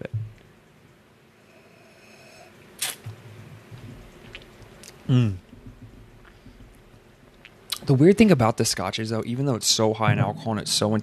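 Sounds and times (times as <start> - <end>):
quiet sip from a drink: 2.8 - 3.0
small wet mouth click: 2.8 - 3.1
speech: 5.1 - 5.4, 7.9 - 11.0.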